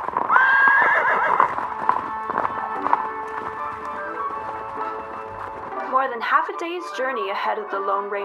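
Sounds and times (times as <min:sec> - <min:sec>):
horse whinnying: 0:00.0 - 0:05.7
horse hooves clip-clopping along a trail: 0:00.0 - 0:08.2
speech: 0:06.4 - 0:08.2.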